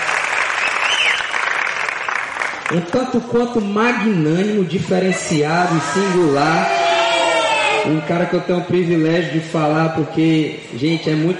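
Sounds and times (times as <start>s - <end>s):
crowd applauding with many hands clapping: 0.0s - 3.0s
faint whistle: 0.6s - 1.4s
speech: 2.7s - 6.9s, 7.8s - 11.3s.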